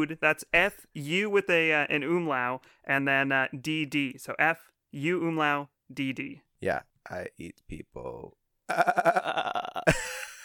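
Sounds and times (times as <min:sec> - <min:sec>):
speech: 0:00.0 - 0:10.2
person imitating a quavering goat bleat: 0:08.7 - 0:09.9.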